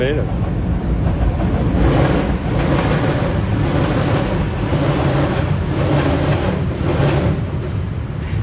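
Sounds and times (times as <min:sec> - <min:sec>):
metro train passing on an elevated track bridge: 0:00.0 - 0:08.4
metro train wheels clattering on an elevated track: 0:00.0 - 0:08.4.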